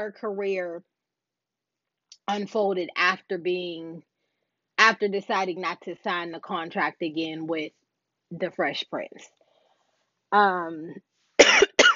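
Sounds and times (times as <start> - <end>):
speech: 0.0 - 1.0, 2.3 - 4.1, 4.8 - 9.4, 10.3 - 11.9
person coughing: 11.4 - 11.9.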